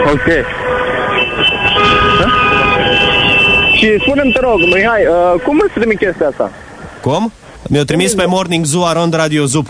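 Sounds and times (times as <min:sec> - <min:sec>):
horns of an express train: 0:00.0 - 0:06.0
speech: 0:00.1 - 0:00.8, 0:03.8 - 0:09.6.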